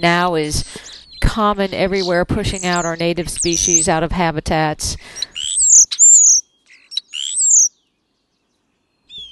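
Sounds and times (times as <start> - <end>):
European starling calls: 0.0 - 4.0, 5.0 - 7.8
speech: 0.0 - 5.3.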